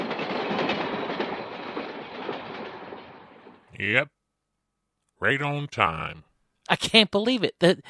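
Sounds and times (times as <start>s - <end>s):
train rumbling past with roar of wheels and carriages: 0.0s - 3.8s
speech: 3.8s - 4.2s, 5.2s - 7.8s.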